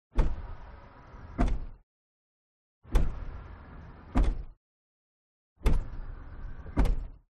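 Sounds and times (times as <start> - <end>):
car lift lowering in a garage: 0.2 - 1.8, 2.9 - 4.5, 5.6 - 7.2.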